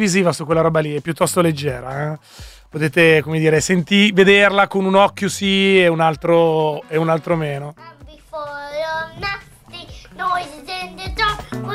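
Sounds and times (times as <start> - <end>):
speech: 0.0 - 9.3
child singing in sustained wavering notes: 7.8 - 11.7.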